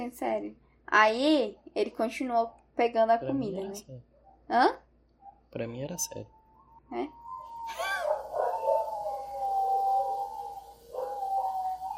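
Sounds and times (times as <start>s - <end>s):
speech: 0.0s - 4.8s, 5.5s - 7.8s
several dogs howling: 6.7s - 11.9s.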